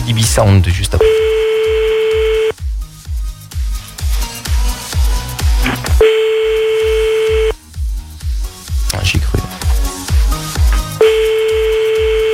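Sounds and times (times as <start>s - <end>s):
speech: 0.1s - 1.3s
telephone dialing tones of an outgoing call: 1.0s - 2.5s, 5.7s - 7.5s, 11.0s - 12.3s
regular thumping beat: 1.0s - 3.3s, 4.1s - 12.3s.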